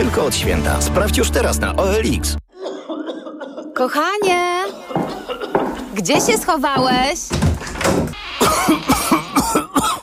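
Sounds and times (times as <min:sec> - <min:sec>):
speech: 0:00.1 - 0:02.4, 0:03.8 - 0:05.1, 0:06.0 - 0:08.8
person coughing hard in a harsh hacking fit: 0:02.6 - 0:03.9, 0:05.0 - 0:05.9, 0:08.4 - 0:10.0.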